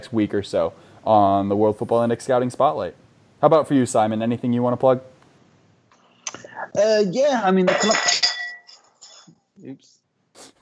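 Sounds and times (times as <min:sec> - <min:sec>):
speech: 0:00.0 - 0:05.1, 0:06.7 - 0:08.2, 0:09.6 - 0:10.5
glass accidentally broken and shattering: 0:07.6 - 0:09.3
glass pieces tinkling as they settle: 0:07.7 - 0:09.3.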